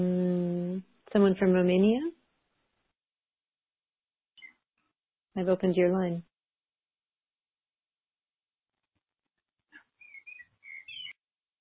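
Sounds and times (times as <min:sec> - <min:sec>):
speech: 0:01.1 - 0:02.2, 0:05.4 - 0:06.3
birds singing outside a window: 0:10.0 - 0:11.2.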